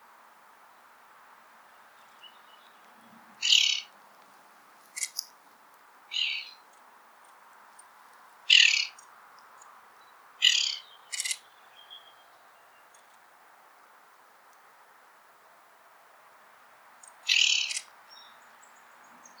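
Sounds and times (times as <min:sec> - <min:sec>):
Williamson's sapsucker Sphyrapicus thyroideus calling in Montana: 0:03.4 - 0:03.9, 0:06.1 - 0:06.6, 0:08.5 - 0:09.1, 0:10.4 - 0:11.5, 0:17.0 - 0:17.9.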